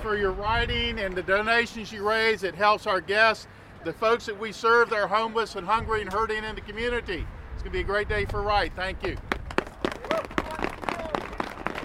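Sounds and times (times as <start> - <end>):
speech: 0.0 - 9.3
crowd of charity ride participants clapping with gloved hands outdoors: 9.0 - 11.8.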